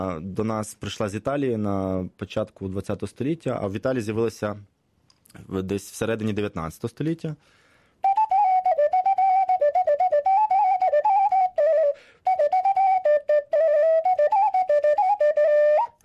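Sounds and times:
speech: 0.0 - 4.7, 5.3 - 7.6
ceramic ocarina playing a quick lively tune: 8.0 - 16.0.

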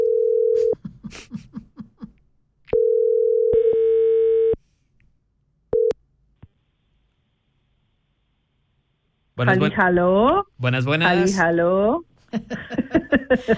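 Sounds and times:
telephone ringing tone while placing a call: 0.0 - 0.8, 2.7 - 4.6, 5.7 - 6.0
laughter: 0.6 - 2.2, 12.3 - 13.5
speech: 9.4 - 13.5.

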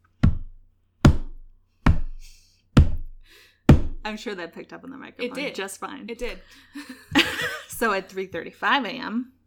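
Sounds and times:
knocked thumps imitating heavy footsteps: 0.2 - 4.1
speech: 4.1 - 9.4
laughter: 6.5 - 7.8.

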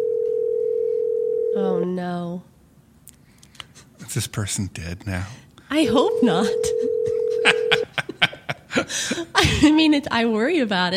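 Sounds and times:
telephone dial tone: 0.0 - 1.6, 6.1 - 7.8
speech: 1.6 - 2.5, 4.1 - 7.6, 9.4 - 10.9
laughter: 5.9 - 9.8.

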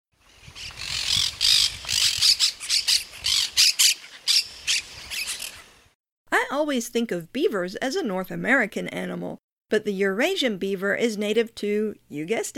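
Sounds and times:
monk parakeets squawking with harsh screeches: 0.8 - 5.6
speech: 6.5 - 12.5.

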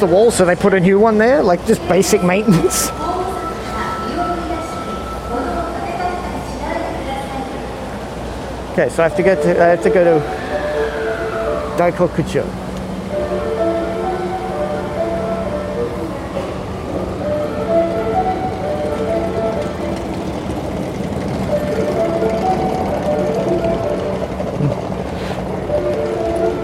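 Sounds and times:
speech: 0.0 - 3.1, 8.8 - 10.4, 11.8 - 12.6
rumble and hiss of a busy rail environment: 0.0 - 26.6
train station approach chime jingle on a Tokyo platform: 1.7 - 6.9.

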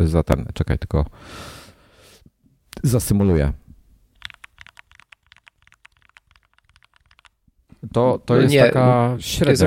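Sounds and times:
speech: 0.0 - 1.6, 2.8 - 3.6, 7.8 - 9.6
rapid typing on a loud computer keyboard: 4.2 - 7.4.

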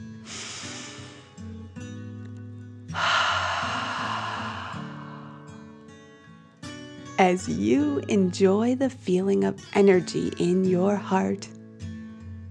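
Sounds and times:
deep breath in and out during a guided meditation: 0.2 - 1.5, 2.9 - 6.4
soft sustained tones beneath breathing in a guided meditation: 3.0 - 5.7
speech: 7.2 - 11.6.

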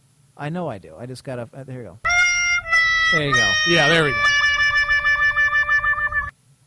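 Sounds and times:
speech: 0.4 - 2.1, 3.1 - 4.5
loud bright horn sound effect: 2.1 - 6.3.

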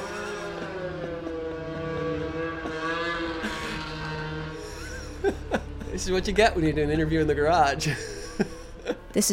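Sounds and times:
snowmobile engines droning by: 0.0 - 9.2
laughter: 4.6 - 6.4, 7.8 - 9.2
speech: 6.0 - 8.1.

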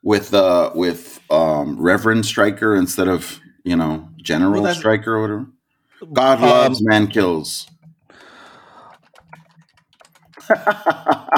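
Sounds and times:
speech: 0.1 - 7.8, 10.5 - 11.3
fast typing on computer keyboards by two people: 7.6 - 11.1
laughter: 10.4 - 11.3.

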